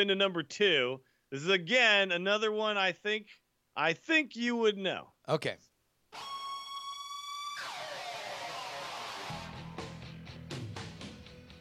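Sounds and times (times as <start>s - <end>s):
speech: 0.0s - 6.3s
piercing siren-like guitar screech falling into distorted noise: 6.1s - 9.8s
heavy guitar: 6.2s - 11.5s.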